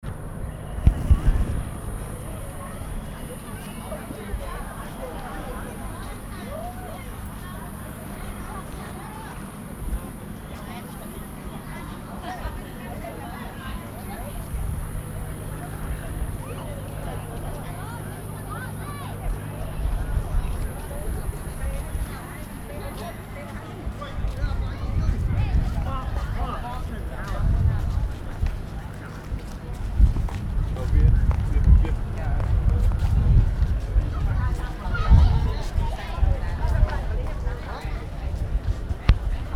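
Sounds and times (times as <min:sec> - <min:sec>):
people enjoying outside park in Phnom Penh Cambodia: 0:00.0 - 0:39.5.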